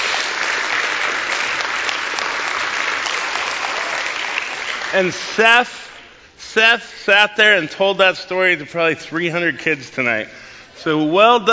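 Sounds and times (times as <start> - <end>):
audience at a Christmas church service applauding: 0.0 - 5.1
speech: 4.9 - 5.8, 6.6 - 11.5.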